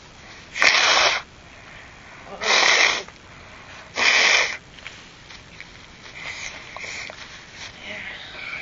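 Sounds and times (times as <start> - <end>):
child blowing nose into a Kleenex tissue: 0.5 - 1.3, 2.4 - 3.1, 3.9 - 4.6
tissue rustling: 4.8 - 8.1.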